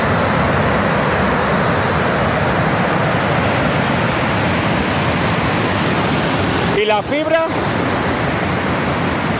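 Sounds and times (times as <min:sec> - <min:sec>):
storm floodwater pouring across a road: 0:00.0 - 0:09.3
speech: 0:06.9 - 0:07.9.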